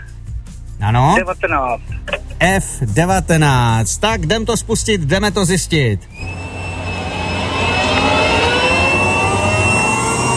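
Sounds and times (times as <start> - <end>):
speech: 0.8 - 6.4
jet airplane accelerating on takeoff: 6.2 - 10.3.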